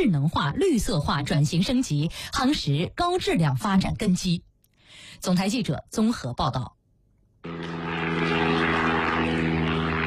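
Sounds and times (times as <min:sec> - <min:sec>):
speech: 0:00.0 - 0:06.8
Changying-8 7-tonne propeller transport drone droning on its maiden flight in Henan China: 0:07.4 - 0:10.0.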